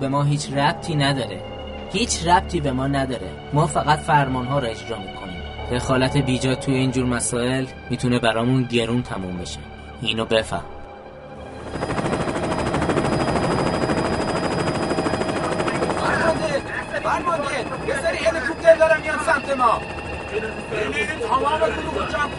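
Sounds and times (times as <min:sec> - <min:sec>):
speech: 0:00.0 - 0:10.8, 0:19.4 - 0:22.3
rotor thump of several helicopters approaching: 0:11.6 - 0:22.3.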